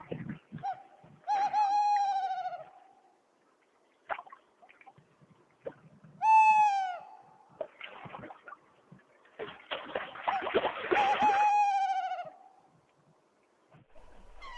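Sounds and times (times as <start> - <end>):
tawny owl calling: 0.6 - 3.0, 6.2 - 7.3, 10.9 - 12.6, 14.0 - 14.5.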